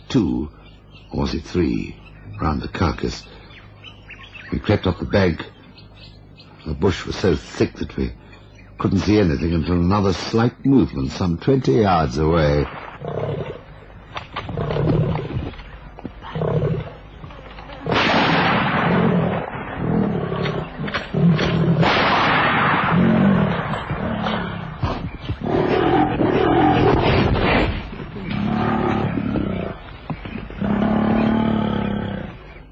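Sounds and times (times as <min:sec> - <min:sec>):
speech: 0:00.1 - 0:03.4, 0:04.5 - 0:08.2, 0:08.8 - 0:13.3
full-grown lion growling and roaring in thick bush: 0:12.9 - 0:13.7, 0:14.4 - 0:15.6, 0:16.2 - 0:17.0, 0:18.7 - 0:22.0, 0:22.6 - 0:32.6.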